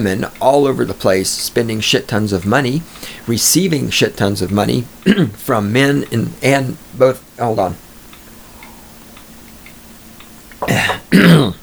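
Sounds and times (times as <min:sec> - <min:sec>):
speech: 0:00.0 - 0:07.8
coughing and throat clearing: 0:05.0 - 0:05.4, 0:10.6 - 0:11.6.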